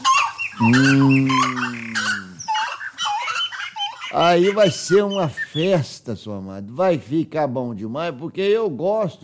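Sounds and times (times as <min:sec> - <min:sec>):
birds calling and chirping in the trees: 0:00.0 - 0:06.1
speech: 0:00.6 - 0:01.8, 0:04.1 - 0:09.2
loud drawn-out low honking cry: 0:00.6 - 0:02.4.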